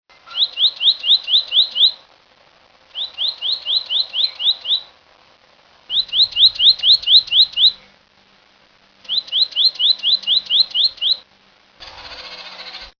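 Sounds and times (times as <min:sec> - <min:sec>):
Bridled titmouse calling: 0:00.3 - 0:02.1, 0:02.9 - 0:05.0, 0:05.9 - 0:07.8, 0:09.0 - 0:11.3.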